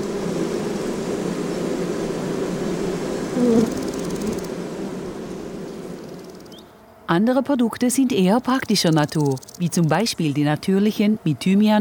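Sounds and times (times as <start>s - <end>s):
bee swarm buzzing around a hive: 0.0s - 7.1s, 7.8s - 10.0s
speech: 7.1s - 11.7s.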